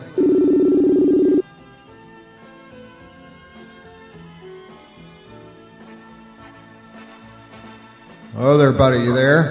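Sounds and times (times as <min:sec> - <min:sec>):
outgoing phone call ringback tone: 0:00.0 - 0:01.4
speech: 0:08.4 - 0:09.5.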